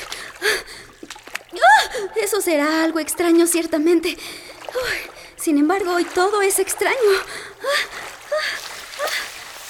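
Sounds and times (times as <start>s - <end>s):
water splashing in a pool: 0.2s - 1.6s, 7.9s - 9.6s
speech: 2.4s - 7.9s.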